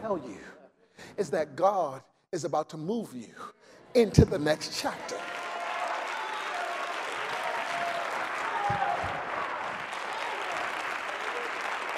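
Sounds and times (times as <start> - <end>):
speech: 0.0 - 0.6, 1.2 - 5.4
church congregation clapping during a sermon: 5.1 - 11.9.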